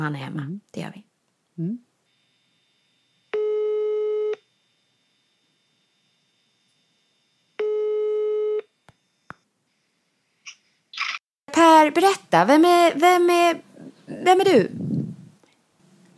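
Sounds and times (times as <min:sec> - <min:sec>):
speech: 0:00.0 - 0:01.9, 0:11.9 - 0:14.9
telephone ringback tone while a call is placed: 0:03.3 - 0:04.4, 0:07.6 - 0:08.7.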